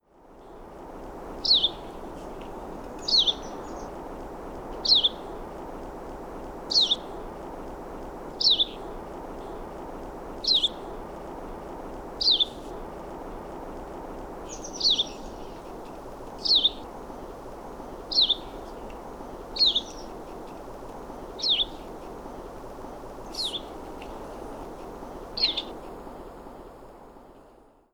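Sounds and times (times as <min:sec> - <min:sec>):
Painted Redstart Myioborus pictus singing: 0:01.4 - 0:01.9, 0:03.0 - 0:04.0, 0:04.8 - 0:05.4, 0:06.7 - 0:07.2, 0:08.4 - 0:08.9, 0:10.4 - 0:10.9, 0:12.2 - 0:12.6, 0:14.4 - 0:22.2, 0:23.2 - 0:23.8, 0:24.7 - 0:25.8.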